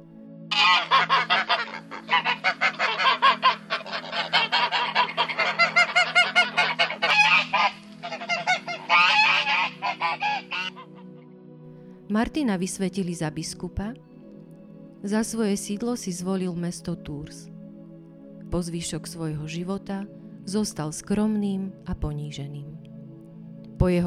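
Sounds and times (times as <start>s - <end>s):
flock of geese in a pen cackling and honking: 0.5s - 11.2s
speech: 12.2s - 14.1s, 15.0s - 17.5s, 18.5s - 22.8s, 23.8s - 24.0s.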